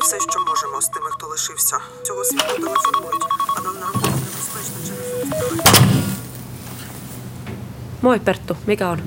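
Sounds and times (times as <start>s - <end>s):
melodic electronic phone ringtone during a call: 0.0s - 6.3s
speech: 0.1s - 6.1s, 8.0s - 9.0s
noise: 2.2s - 9.0s.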